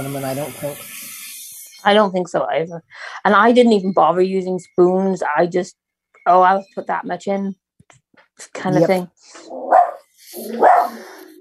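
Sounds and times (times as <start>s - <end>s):
speech: 0.0s - 1.0s, 1.8s - 9.8s, 10.4s - 11.0s
dog barking: 9.6s - 11.1s.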